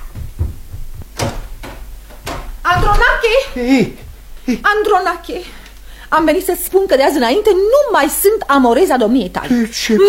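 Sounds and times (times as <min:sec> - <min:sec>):
faint knock: 0:00.0 - 0:03.1
back door opening and closing: 0:00.0 - 0:03.4
low wooden thumps and rattles of a back door: 0:00.0 - 0:03.4
speech: 0:02.9 - 0:10.0.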